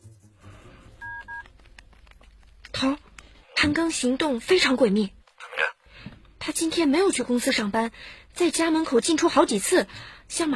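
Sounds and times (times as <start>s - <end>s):
telephone touch-tone dialing beeps: 1.0s - 1.5s
speech: 2.8s - 3.0s, 3.7s - 5.2s, 6.6s - 10.5s.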